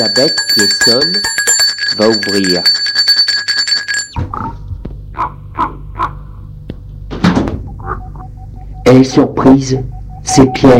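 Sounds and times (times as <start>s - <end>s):
speech: 0.0s - 2.9s, 4.2s - 4.6s, 8.9s - 10.7s
bright doorbell at a gate ringing: 0.0s - 4.2s
thumps outdoors: 6.7s - 7.7s.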